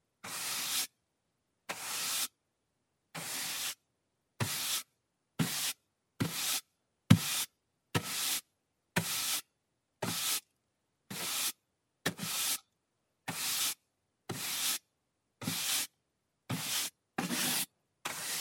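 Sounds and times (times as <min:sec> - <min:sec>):
stiff painter's brush on wood: 0:01.7 - 0:02.3, 0:03.2 - 0:03.8, 0:04.4 - 0:10.5, 0:11.1 - 0:12.6, 0:13.3 - 0:14.8, 0:15.4 - 0:15.9, 0:16.5 - 0:18.3.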